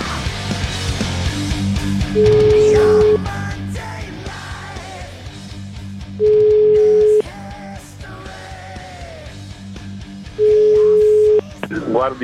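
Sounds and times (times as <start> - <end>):
continuous music bed: 0.0 - 12.2
speech: 2.1 - 2.4, 12.0 - 12.2
telephone ringback tone while calling back: 2.2 - 3.4, 6.2 - 7.2, 10.4 - 11.5.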